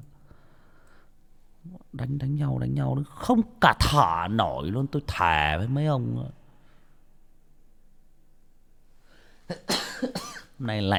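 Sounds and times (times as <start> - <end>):
speech: 2.0 - 6.4, 9.5 - 10.9
person sneezing: 9.5 - 10.6.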